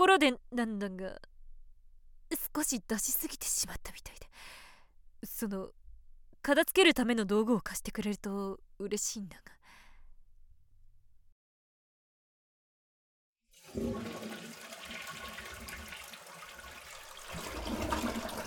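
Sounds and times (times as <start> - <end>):
speech: 0.0 - 1.3, 2.3 - 4.6, 5.2 - 5.8, 6.4 - 9.6, 13.7 - 14.4
toilet flushing: 13.6 - 18.4.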